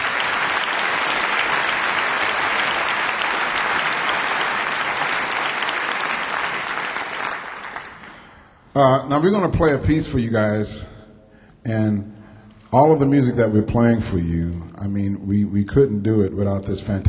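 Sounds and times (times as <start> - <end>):
applause from a sizable crowd: 0.0 - 8.4
speech: 8.8 - 10.9, 11.6 - 17.0.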